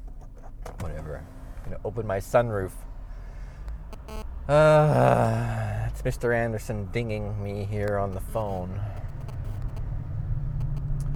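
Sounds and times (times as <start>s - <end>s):
car engine and road noise in rush hour traffic heard from inside: 0.0s - 11.1s
speech: 1.1s - 2.9s, 4.5s - 8.9s
faint high ticks: 7.9s - 9.8s, 10.6s - 11.1s.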